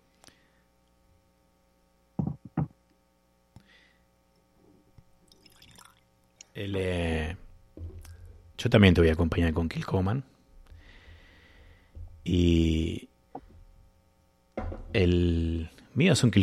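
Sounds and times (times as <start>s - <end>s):
steady low electrical hum: 0.0s - 16.4s
glass knocking against a surface: 2.2s - 2.7s, 14.6s - 15.0s
whisky pouring into a glass: 5.3s - 6.1s
speech: 6.6s - 7.4s, 8.6s - 10.3s, 12.2s - 13.0s, 15.0s - 16.4s.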